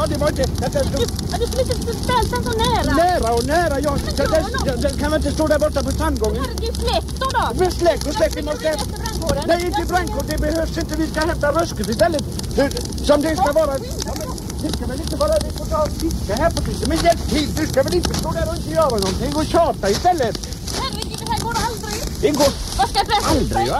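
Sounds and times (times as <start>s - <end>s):
speech: 0.0s - 20.5s, 22.2s - 23.7s
large grill fire roaring and crackling: 0.0s - 23.7s.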